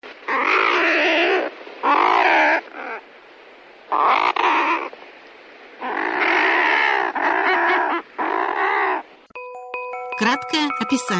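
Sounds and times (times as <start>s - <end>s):
common murres giving harsh growling calls: 0.2s - 9.3s
speech: 10.5s - 11.1s.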